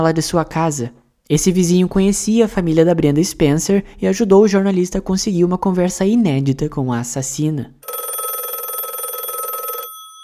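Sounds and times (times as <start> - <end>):
speech: 0.0 - 7.9
old-style telephone bell ringing: 7.8 - 10.2.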